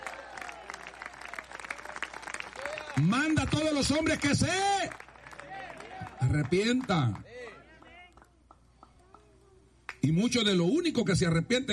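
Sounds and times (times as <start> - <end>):
church congregation applauding during a worship service: 0.0 - 9.2
speech: 3.0 - 5.0, 6.2 - 7.3, 10.0 - 11.7.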